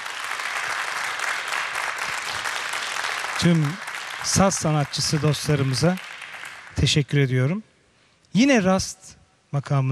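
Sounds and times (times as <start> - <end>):
audience applause for a Turkish classical music orchestra at a concert: 0.0 - 6.9
speech: 3.4 - 6.1, 6.8 - 7.7, 8.3 - 9.9.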